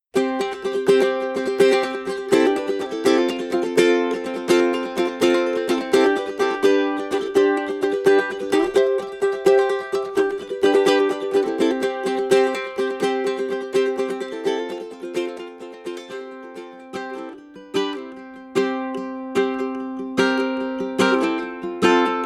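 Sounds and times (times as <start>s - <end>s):
ukulele: 0.0s - 22.2s.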